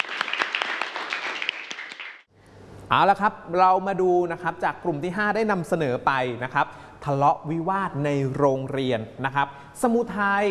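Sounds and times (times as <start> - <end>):
group applauding after a school class presentation: 0.0 - 2.3
speech: 2.9 - 10.4.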